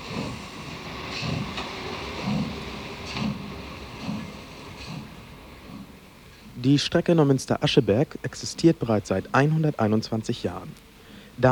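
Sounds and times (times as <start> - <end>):
train wheels clattering over rail joints: 0.0 - 6.6
diesel train engine rumbling departing a branch line station platform: 0.0 - 11.5
speech: 6.6 - 11.5.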